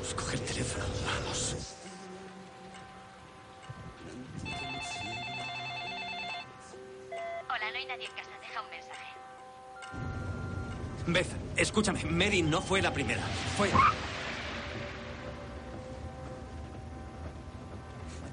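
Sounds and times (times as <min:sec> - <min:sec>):
music: 0:00.0 - 0:18.3
telephone ringing with an electronic trill: 0:04.4 - 0:09.2
speech: 0:07.9 - 0:09.2, 0:11.1 - 0:14.1.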